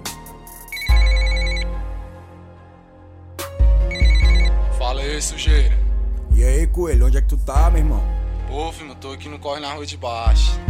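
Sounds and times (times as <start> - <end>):
phone ringtone of an unanswered call: 0.7 - 2.0, 3.8 - 4.6
speech: 5.2 - 5.8, 6.4 - 10.6.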